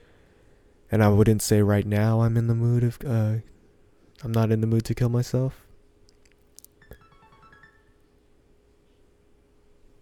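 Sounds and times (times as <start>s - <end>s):
speech: 0.9s - 3.5s, 4.2s - 5.6s
phone text message alert chime: 6.8s - 8.0s.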